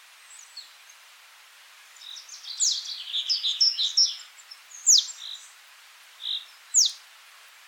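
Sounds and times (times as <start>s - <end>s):
great tit Parus major call series: 2.0s - 5.6s, 6.2s - 7.0s.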